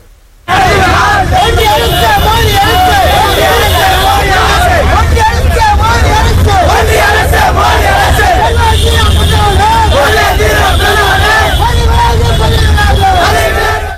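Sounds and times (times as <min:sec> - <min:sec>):
dense protest crowd shouting and chanting near a blocked government bus: 0:00.5 - 0:13.9
steady low engine-like rumble: 0:02.5 - 0:12.9.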